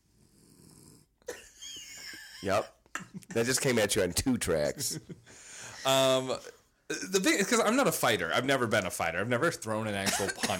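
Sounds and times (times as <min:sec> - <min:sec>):
dog snoring: 0:00.0 - 0:01.2
speech: 0:02.4 - 0:10.5.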